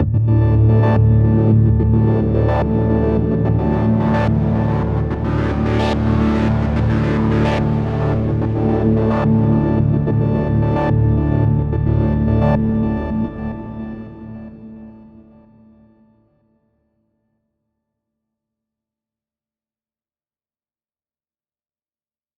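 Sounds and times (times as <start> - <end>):
psytrance synth pad: 0.0 - 15.3.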